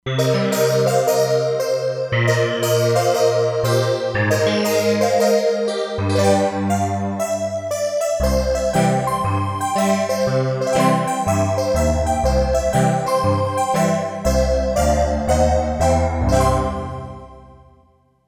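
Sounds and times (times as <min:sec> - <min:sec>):
resonant synthesizer keys factory patch: 0:00.0 - 0:17.7.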